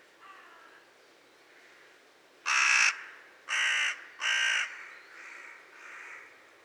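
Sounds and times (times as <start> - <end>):
carrion crow Corvus corone giving loud harsh caws: 0.2 - 0.8, 2.5 - 6.3.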